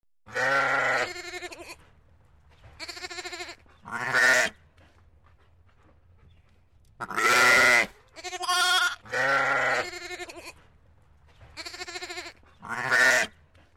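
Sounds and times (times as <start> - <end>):
goat bleating: 0.3 - 1.8, 2.8 - 4.5, 7.0 - 10.6, 11.6 - 13.3.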